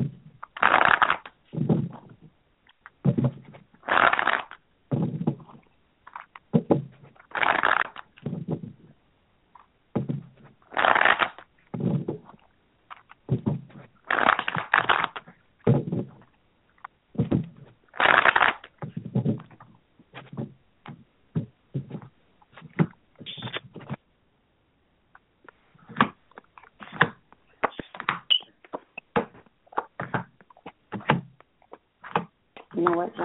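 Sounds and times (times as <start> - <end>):
tarot cards being shuffled before a reading: 0.4 - 8.9, 9.6 - 24.0, 25.4 - 33.2.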